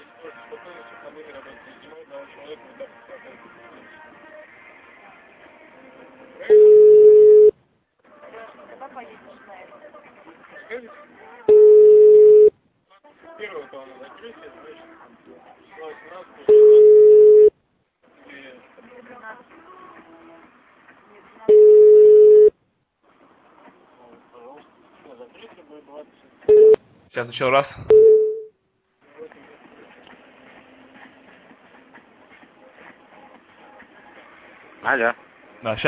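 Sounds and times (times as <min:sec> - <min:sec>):
speech: 0:01.2 - 0:04.3, 0:25.3 - 0:28.1, 0:34.8 - 0:35.8
telephone line tones while calling back: 0:06.4 - 0:07.5, 0:11.5 - 0:12.5, 0:16.5 - 0:17.5, 0:21.5 - 0:22.5, 0:26.5 - 0:26.8, 0:27.9 - 0:28.5.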